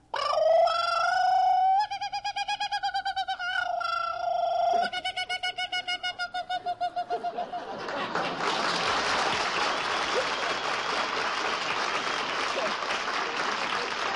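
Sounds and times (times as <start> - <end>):
man imitating a kookaburra call: 0.0 - 7.6
laughter: 4.8 - 14.1.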